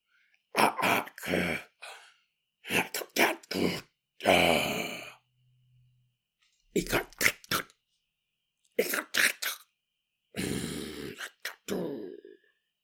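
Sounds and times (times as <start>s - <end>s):
sleeping person making guttural growling and grunting noises: 0.5s - 2.0s, 2.6s - 5.2s, 6.8s - 7.6s, 10.4s - 12.4s.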